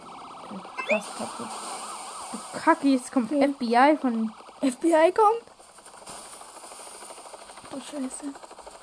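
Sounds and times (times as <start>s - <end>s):
video game helicopter rotor chop overhead: 0.0s - 8.8s
speech: 0.5s - 1.7s, 2.3s - 5.5s, 7.8s - 8.5s.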